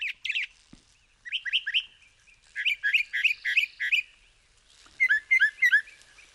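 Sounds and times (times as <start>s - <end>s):
northern mockingbird singing: 1.2s - 4.2s, 5.0s - 6.3s.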